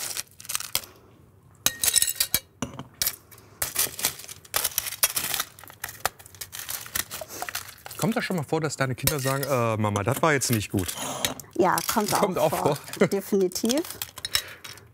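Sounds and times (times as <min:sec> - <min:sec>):
crushed ice rattling into a glass with limes and sugar: 0:03.8 - 0:08.4, 0:10.4 - 0:14.8
speech: 0:08.0 - 0:14.1.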